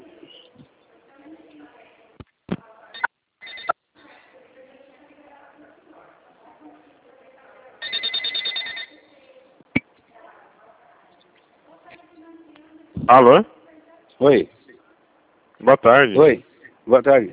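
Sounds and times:
telephone ringing over the line while a call is transferred: 0:03.0 - 0:03.8, 0:07.8 - 0:09.1
speech: 0:13.1 - 0:13.6, 0:14.2 - 0:14.6, 0:15.6 - 0:17.3.

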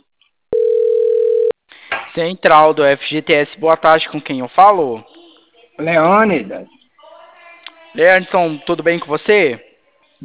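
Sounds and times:
electronic telephone tone of call being answered: 0:00.5 - 0:01.6
speech: 0:02.2 - 0:05.1, 0:05.8 - 0:06.8, 0:07.9 - 0:10.2.

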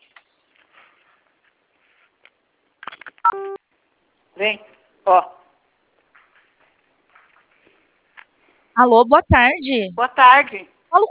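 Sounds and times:
telephone keypad tone from pressing zero: 0:03.3 - 0:03.6
speech: 0:04.4 - 0:05.4, 0:08.8 - 0:11.0.

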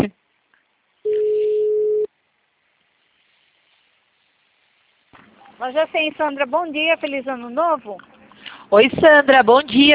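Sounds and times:
steady mid-pitched telephone tone while placing a VoIP call: 0:01.1 - 0:02.1
speech: 0:05.6 - 0:08.1, 0:08.7 - 0:09.9.

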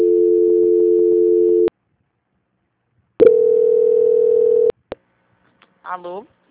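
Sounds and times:
telephone tone during a call transfer: 0:00.0 - 0:01.7, 0:03.2 - 0:04.8.

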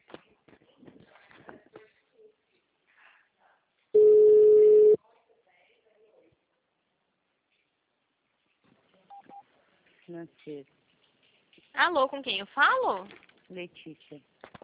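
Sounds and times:
telephone keypad tone in an automated phone menu: 0:03.9 - 0:04.9
speech: 0:10.2 - 0:10.9, 0:11.7 - 0:14.3.

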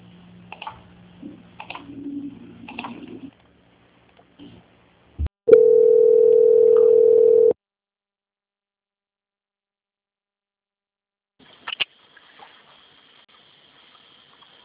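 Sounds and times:
telephone line tone during a call transfer: 0:05.5 - 0:07.6.

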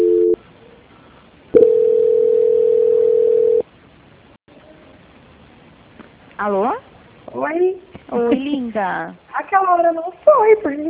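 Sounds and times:
brief telephone line tone after dialing star two: 0:00.0 - 0:00.4, 0:01.6 - 0:03.6
speech: 0:08.3 - 0:10.8.

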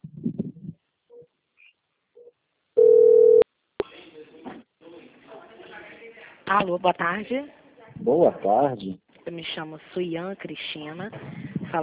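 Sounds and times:
telephone call ringing tone: 0:02.8 - 0:03.4
speech: 0:06.5 - 0:11.8.

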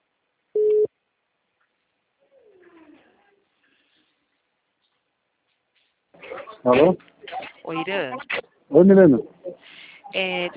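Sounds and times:
telephone line tone while a call is being placed: 0:00.6 - 0:00.9
speech: 0:06.6 - 0:07.1, 0:07.7 - 0:09.4, 0:10.1 - 0:10.5.

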